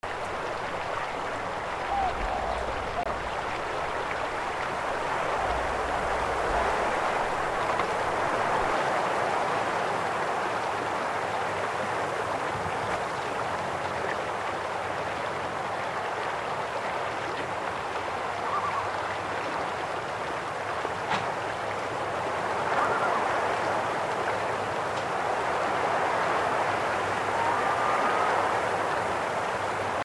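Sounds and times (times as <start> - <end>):
country river: 0.0 - 30.0
wind in the country: 0.0 - 30.0
birds: 0.2 - 4.4, 18.3 - 19.2.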